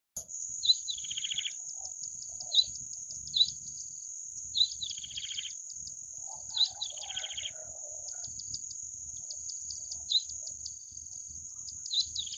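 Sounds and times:
bar-winged prinia chirping twitters: 0.2s - 12.3s
high insect-like whine: 0.2s - 12.3s.

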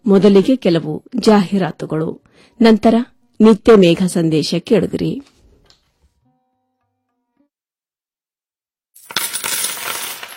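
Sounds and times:
speech: 0.1s - 5.3s
coins dropping and clinking: 9.0s - 10.3s.

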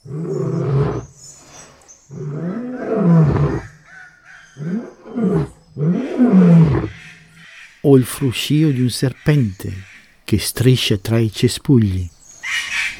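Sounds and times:
lion roaring: 0.0s - 3.9s, 4.6s - 7.3s
speech: 7.9s - 12.7s.

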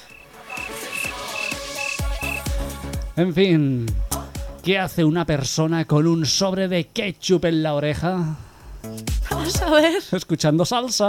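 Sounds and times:
crickets chirping: 0.0s - 2.7s, 4.7s - 10.4s
lower rhythmic croaking calls: 0.0s - 2.7s
speech: 3.2s - 4.0s, 4.6s - 11.0s.

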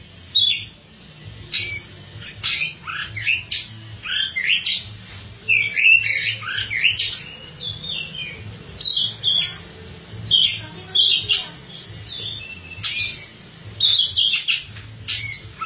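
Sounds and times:
Oriental magpie-robin giving varied whistled and buzzy notes and bright chirps: 0.3s - 0.8s, 1.5s - 9.7s, 10.3s - 15.6s.

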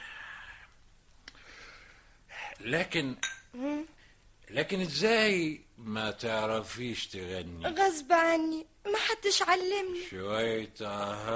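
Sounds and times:
speech: 2.6s - 11.3s
glasses clinking together in a toast: 3.2s - 3.5s.

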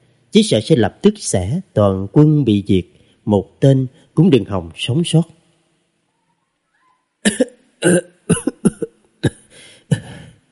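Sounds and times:
speech: 0.4s - 5.4s, 7.2s - 8.4s
violent dry coughing: 7.2s - 10.5s.

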